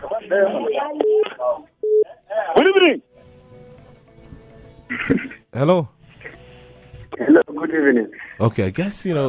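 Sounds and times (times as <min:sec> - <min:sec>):
speech: 0:00.3 - 0:01.7, 0:02.8 - 0:03.1, 0:05.0 - 0:06.0, 0:07.6 - 0:09.2
telephone dialing tones while reconnecting a dropped call: 0:01.0 - 0:02.1.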